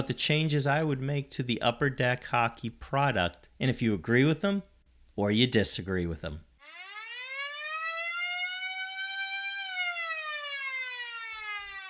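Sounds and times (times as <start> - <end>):
speech: 0.0 - 6.5
hockey period-ending siren horn: 6.6 - 11.8.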